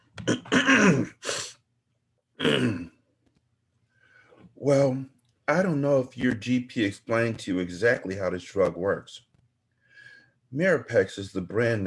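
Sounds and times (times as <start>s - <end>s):
doctor clearing his throat: 0.2s - 1.6s, 2.4s - 3.0s
speech: 4.7s - 9.3s, 10.5s - 11.8s.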